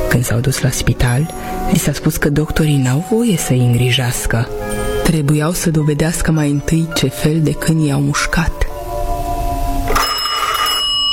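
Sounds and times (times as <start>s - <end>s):
speech: 0.2s - 8.6s
telephone bell ringing: 9.9s - 11.1s.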